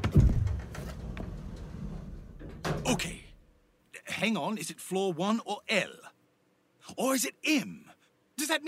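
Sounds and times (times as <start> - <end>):
elevator door sliding shut with a dull thud: 0.1 - 3.2
speech: 2.9 - 3.2, 4.2 - 6.0, 6.9 - 8.6.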